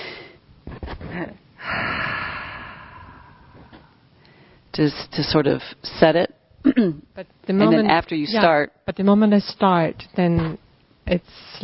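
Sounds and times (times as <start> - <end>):
speech: 1.2 - 2.1, 4.8 - 11.6
human breathing for a breathing exercise: 1.6 - 4.7.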